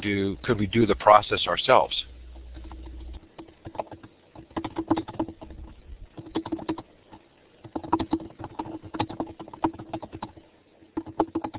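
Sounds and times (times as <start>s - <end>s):
speech: 0.0s - 2.1s
low hum: 0.0s - 7.4s
typing on a computer keyboard: 2.5s - 11.5s.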